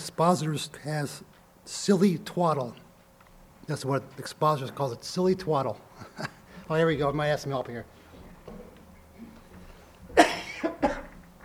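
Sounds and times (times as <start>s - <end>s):
speech: 0.0s - 2.8s, 3.7s - 8.6s
person coughing in a short fit: 10.1s - 11.2s.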